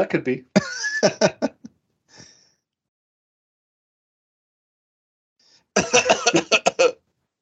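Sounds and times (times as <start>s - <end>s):
speech: 0.0s - 1.5s, 5.8s - 7.0s
laughter: 0.6s - 1.7s, 5.8s - 7.0s
person fake coughing: 5.8s - 7.0s.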